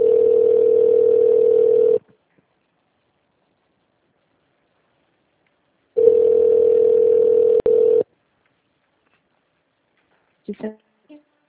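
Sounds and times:
telephone ringback tone while a call connects: 0.0s - 2.0s, 6.0s - 8.0s.

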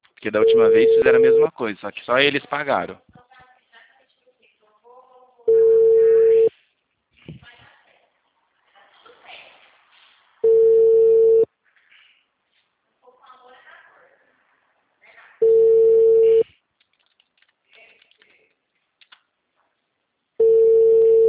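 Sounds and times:
speech: 0.2s - 3.2s
telephone ringback tone from an outgoing call: 0.4s - 1.5s, 5.5s - 6.5s, 10.4s - 11.5s, 15.4s - 16.4s, 20.4s - 21.2s.

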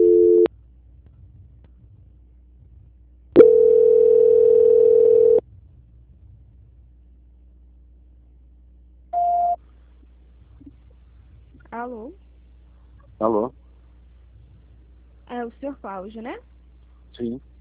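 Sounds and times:
telephone tones during a call transfer: 0.0s - 0.5s, 3.4s - 5.4s, 9.2s - 9.6s
faint low hum: 0.0s - 17.5s
short high beep: 9.2s - 9.6s
speech: 15.8s - 16.5s, 17.1s - 17.5s.

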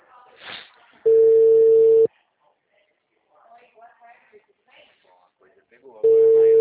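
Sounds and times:
telephone line tone while a call is being placed: 1.1s - 2.1s, 6.0s - 6.5s.

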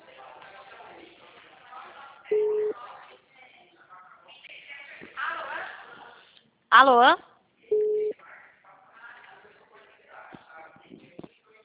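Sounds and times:
faint murmuring voices: 0.0s - 6.4s, 7.6s - 11.6s
phone line beep after a dropped call: 2.3s - 2.7s, 7.7s - 8.1s
speech: 6.8s - 7.2s.

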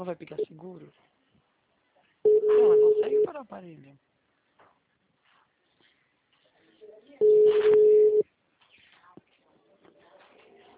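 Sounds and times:
speech: 0.0s - 1.2s, 2.2s - 4.1s
telephone ringback tone: 2.3s - 3.3s, 7.2s - 8.2s.

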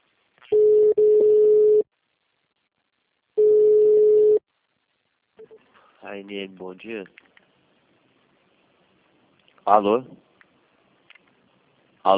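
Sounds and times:
telephone ringback tones while on hold for an operator: 0.5s - 1.8s, 3.4s - 4.4s
speech: 6.2s - 7.3s, 9.6s - 10.2s.

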